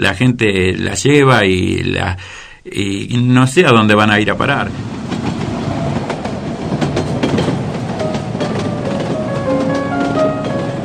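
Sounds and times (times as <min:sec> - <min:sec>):
speech: 0:00.0 - 0:04.9
subway train wheels rumbling on track: 0:04.7 - 0:10.8
subway train rhythmic clickety-clack: 0:05.0 - 0:10.8.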